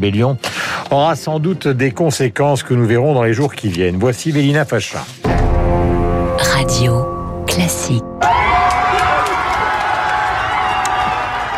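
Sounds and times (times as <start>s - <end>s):
speech: 0.0s - 5.4s, 6.4s - 8.1s
hundreds of people cheering and shouting outdoors in front of a courthouse: 8.2s - 11.5s.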